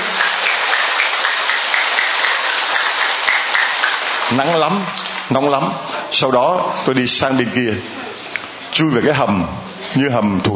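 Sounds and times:
large crowd applauding: 0.0 - 5.4
speech: 4.3 - 8.0, 8.7 - 10.5.

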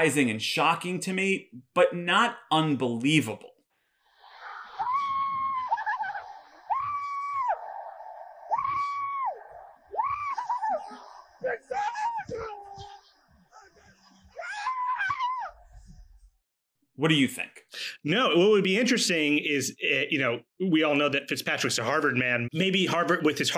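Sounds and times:
speech: 0.0 - 3.5, 17.0 - 23.5
laughter: 4.3 - 7.8, 8.5 - 14.4
burly bearded football quarterback squealing celebrating a touchdown throw: 4.7 - 7.7, 8.5 - 13.0, 14.4 - 15.6.

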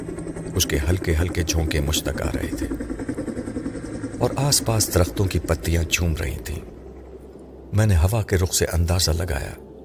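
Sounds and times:
helicopter rotor thudding in a forest: 0.0 - 7.7
helicopter engine drone in a forest: 0.0 - 9.8
speech: 0.6 - 2.9, 4.2 - 6.7, 7.7 - 9.6.

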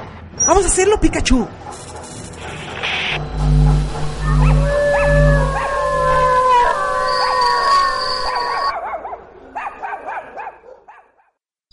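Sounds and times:
speech: 0.5 - 1.9
low rumble: 3.2 - 7.4
pack of dogs howling: 3.2 - 10.5
dogs whimpering and yipping: 4.2 - 10.6.

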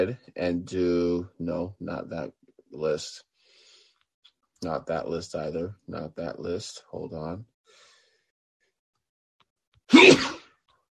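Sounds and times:
speech: 0.0 - 3.3, 4.6 - 7.8
sneeze: 9.9 - 10.6.

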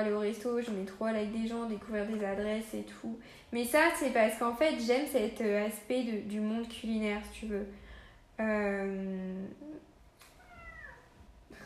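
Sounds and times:
speech: 0.0 - 7.8, 8.4 - 9.9
cat meowing: 10.3 - 11.2.

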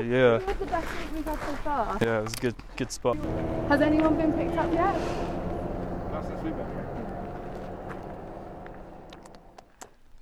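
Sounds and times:
speech: 0.0 - 5.5, 6.2 - 6.9
car rumbling on road: 3.1 - 9.7.

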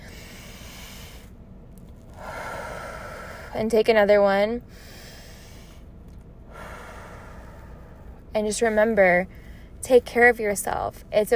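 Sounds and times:
deep breath taken slowly: 0.0 - 1.3, 2.1 - 3.6, 4.7 - 5.9, 6.5 - 8.2
speech: 3.5 - 4.9, 8.4 - 11.3.

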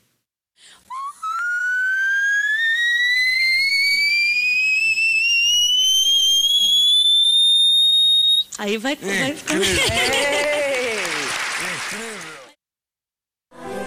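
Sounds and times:
whistle-register voice singing very high notes: 0.9 - 8.6
speech: 8.6 - 10.6
laughter: 9.1 - 12.5.

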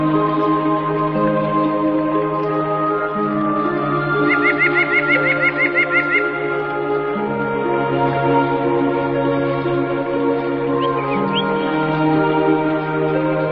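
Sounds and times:
sustained low tuneful tones: 0.0 - 13.5
birds calling: 4.0 - 6.7, 10.8 - 11.6.

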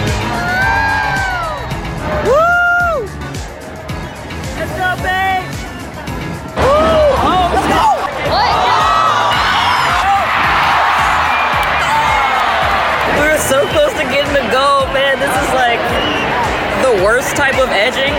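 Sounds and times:
sports game crowd shouting and cheering: 0.0 - 18.1
individual whoops and long rising yells: 0.3 - 3.1, 6.6 - 13.0.

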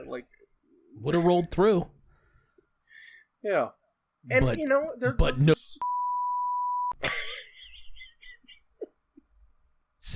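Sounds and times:
speech: 0.1 - 0.4, 1.0 - 2.0, 3.4 - 5.9
censor bleep pure tone: 5.8 - 7.0.

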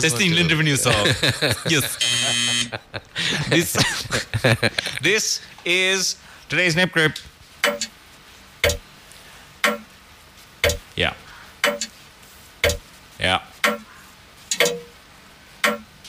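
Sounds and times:
laughter: 0.0 - 5.1
speech: 0.0 - 7.9, 11.0 - 11.2, 13.2 - 13.5
grandfather clock ticking: 9.6 - 9.9, 11.6 - 11.9, 12.6 - 12.8, 13.6 - 13.9.

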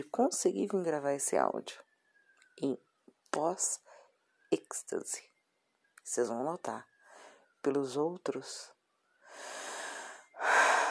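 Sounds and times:
speech: 0.0 - 1.9, 2.6 - 3.9, 4.5 - 5.3, 6.1 - 6.9, 7.6 - 8.8
heavy breathing: 9.3 - 10.8.

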